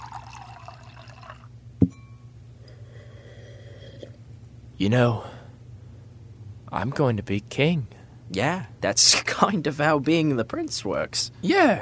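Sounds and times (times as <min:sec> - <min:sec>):
water being poured for someone to drink: 0:00.0 - 0:01.5
quiet hum: 0:00.0 - 0:11.8
speech: 0:04.8 - 0:05.3, 0:06.7 - 0:11.8.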